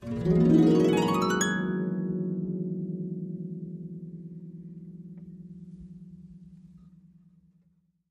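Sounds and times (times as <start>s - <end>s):
ascending harp glissando: 0.0s - 5.1s.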